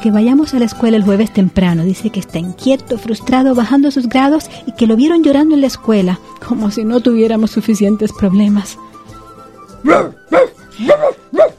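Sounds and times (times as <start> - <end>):
speech: 0.0 - 9.0, 9.8 - 11.5
dog barking in a stressed household: 9.8 - 11.5.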